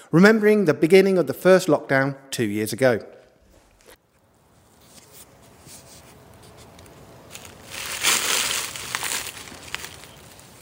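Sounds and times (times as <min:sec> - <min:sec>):
speech: 0:00.1 - 0:03.2
scuffling through dry dead leaves: 0:07.2 - 0:10.5.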